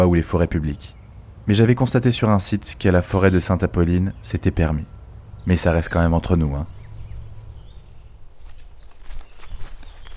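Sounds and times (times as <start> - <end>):
speech: 0.0 - 6.8
faint bird chirps: 3.1 - 10.1
footsteps crunching through leaves and twigs in a forest: 6.7 - 10.1.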